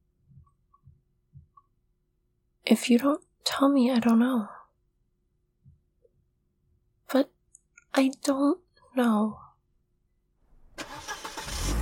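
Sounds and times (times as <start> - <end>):
speech: 2.7 - 4.6, 7.1 - 7.3, 8.0 - 9.4
car engine cranking and starting: 10.5 - 11.7.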